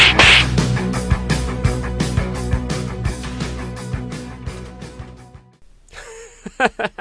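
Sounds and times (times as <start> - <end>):
cartoonish slap sound effect smacking hits: 0.0 - 0.7
rhythmic music: 0.0 - 5.0
laughter: 6.0 - 7.0.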